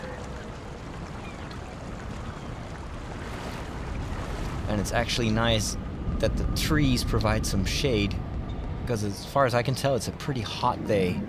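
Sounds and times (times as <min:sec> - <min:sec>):
water rushing and splashing from campus fountains on a hot day: 0:00.0 - 0:07.7
speech: 0:04.7 - 0:08.2, 0:08.9 - 0:11.2.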